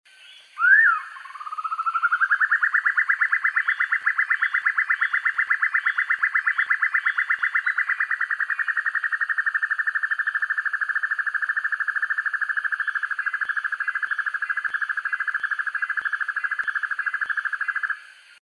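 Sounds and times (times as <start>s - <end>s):
Dusky broadbill calling in rainforest: 0.1s - 18.2s.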